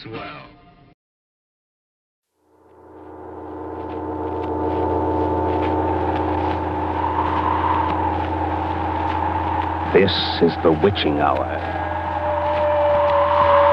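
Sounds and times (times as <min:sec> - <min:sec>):
speech: 0:00.0 - 0:00.6, 0:10.0 - 0:11.8
toy hot rod engine buzzing: 0:03.8 - 0:13.7.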